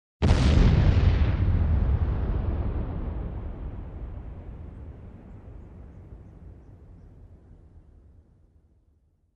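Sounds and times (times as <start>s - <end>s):
bomb detonation: 0.2s - 7.8s.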